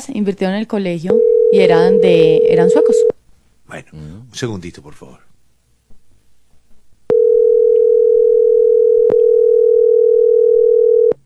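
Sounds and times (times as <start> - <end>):
speech: 0.0 - 5.3
telephone dial tone while placing a call: 1.1 - 3.1, 7.1 - 11.2.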